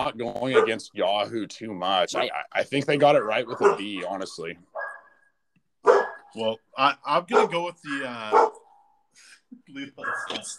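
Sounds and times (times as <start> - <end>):
speech: 0.0 - 4.7, 6.3 - 8.5, 9.2 - 10.5
dogs barking: 0.4 - 0.9, 3.1 - 5.2, 5.8 - 6.3, 7.3 - 7.6, 8.3 - 9.0.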